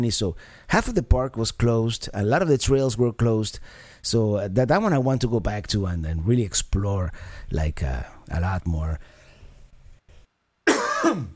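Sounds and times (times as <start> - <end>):
speech: 0.0 - 9.2, 11.0 - 11.3
harsh loud cough: 10.7 - 11.3.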